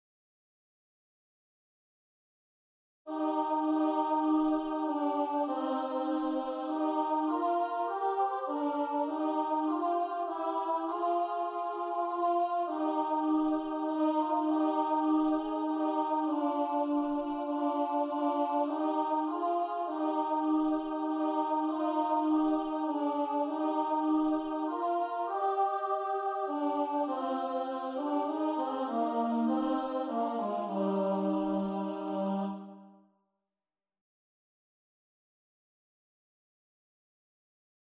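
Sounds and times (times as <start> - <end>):
alto voice singing an SAB choral part: 3.1 - 32.9.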